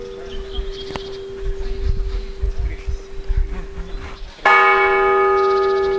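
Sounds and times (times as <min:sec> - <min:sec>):
monastery church bell striking: 0:00.0 - 0:02.4, 0:04.4 - 0:05.9.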